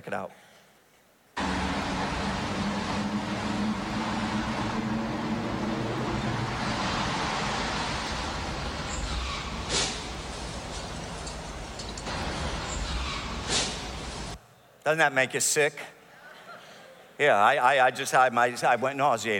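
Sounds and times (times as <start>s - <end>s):
speech: 0.1s - 0.5s, 14.9s - 16.0s, 17.2s - 19.3s
red Dodge Viper sports car engine roaring driving out of a tunnel: 1.4s - 14.4s
road and air noise: 1.4s - 14.4s.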